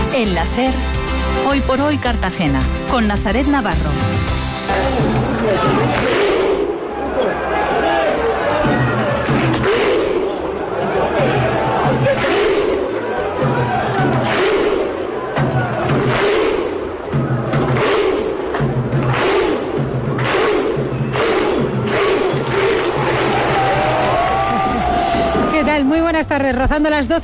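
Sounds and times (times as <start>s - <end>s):
speech: 0.2s - 6.1s, 25.8s - 27.2s
football crowd chanting and roaring in a stadium: 4.7s - 25.9s.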